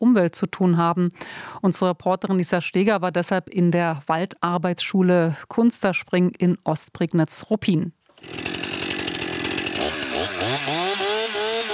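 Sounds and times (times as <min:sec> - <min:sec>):
speech: 0:00.0 - 0:08.5
chainsaw cutting wood at a forestry school in Brandenburg Germany: 0:08.1 - 0:11.7.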